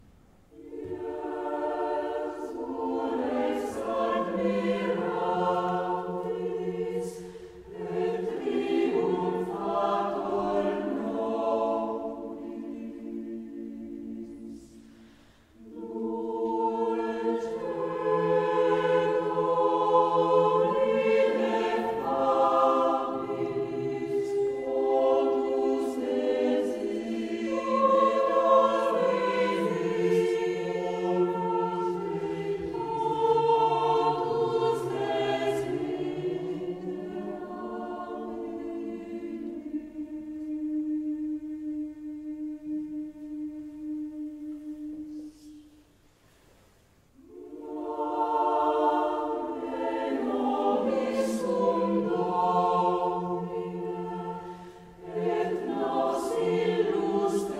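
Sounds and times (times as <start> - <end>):
SAB three-part choir singing a sacred piece: 0.5 - 45.9, 47.2 - 57.5.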